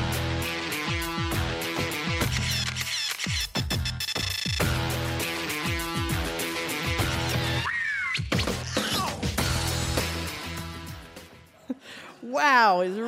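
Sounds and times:
electronic TV reality show theme music with pounding beat: 0.0 - 11.5
shrill wailing screeching sounds: 7.5 - 9.2
speech: 12.4 - 13.0.

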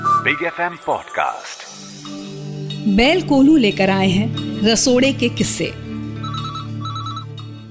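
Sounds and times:
speech: 0.3 - 2.1, 2.8 - 5.8
telephone ringing with electronic warble: 6.2 - 7.6.

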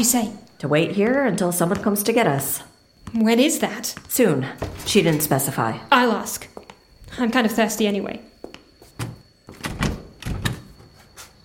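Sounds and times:
speech: 0.0 - 8.3
locked door being rattled and pushed: 9.0 - 10.8.

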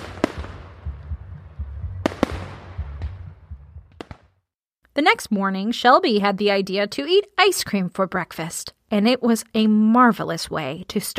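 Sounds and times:
low rumbling wash between explosions: 0.0 - 4.3
fireworks bursting in cracks, bangs and pops: 0.0 - 4.4
speech: 5.0 - 11.1.

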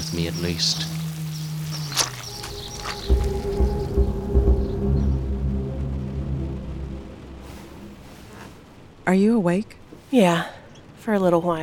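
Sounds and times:
low rumbling: 0.0 - 11.6
rain falling: 0.0 - 11.6
speech: 0.1 - 1.0, 9.1 - 11.6.

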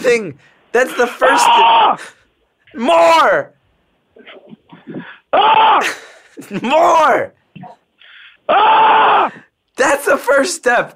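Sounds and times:
speech: 0.0 - 3.6, 4.2 - 7.8, 8.5 - 10.9
person screaming loudly: 1.2 - 2.1, 5.0 - 6.0, 8.5 - 9.5.

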